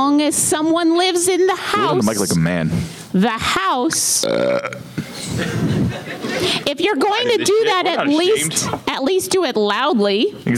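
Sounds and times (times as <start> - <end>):
speech: 0.0 - 10.5
long croaky burp: 4.2 - 5.0
laughter: 5.0 - 8.8.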